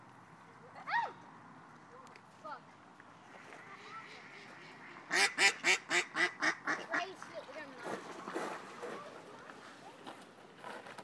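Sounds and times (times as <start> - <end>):
voices: 0.1 - 10.6
male ducks quacking while chasing: 3.6 - 7.3.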